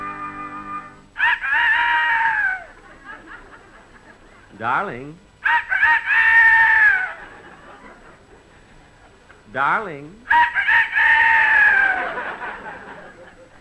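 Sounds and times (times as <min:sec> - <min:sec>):
rooster crowing: 0:01.2 - 0:02.8, 0:05.4 - 0:07.4, 0:10.3 - 0:12.7
laughter: 0:02.5 - 0:04.6, 0:07.0 - 0:09.4, 0:11.6 - 0:13.5
speech: 0:04.6 - 0:05.2, 0:09.5 - 0:10.3.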